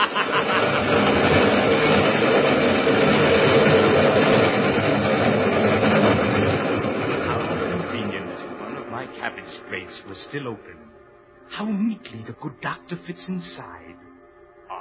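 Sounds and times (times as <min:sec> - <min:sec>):
laughter: 0:00.0 - 0:01.1
train rumbling past with roar of wheels and engine: 0:00.0 - 0:14.0
faint rhythmic clatter of train: 0:00.0 - 0:14.2
speech: 0:10.4 - 0:11.0, 0:11.6 - 0:14.1.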